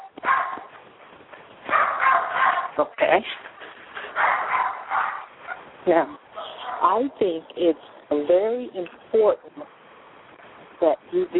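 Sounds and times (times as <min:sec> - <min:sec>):
dogs barking: 0:00.2 - 0:00.8, 0:01.7 - 0:02.8, 0:04.0 - 0:05.7, 0:06.4 - 0:07.0
speech: 0:02.8 - 0:03.5, 0:05.8 - 0:06.2, 0:06.8 - 0:09.8, 0:10.8 - 0:11.3.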